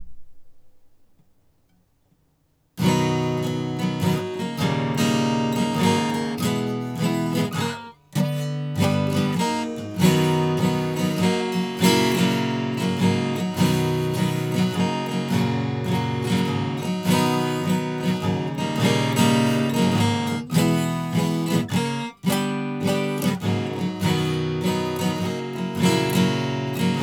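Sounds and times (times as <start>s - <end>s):
guitar strum: 0.0s - 1.2s, 2.8s - 27.0s.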